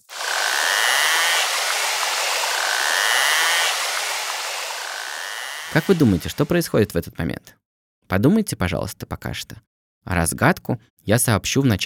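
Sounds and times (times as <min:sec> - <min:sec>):
marine animal hunting clicks merging into a rasping buzz: 0:00.1 - 0:06.5
speech: 0:05.7 - 0:11.8.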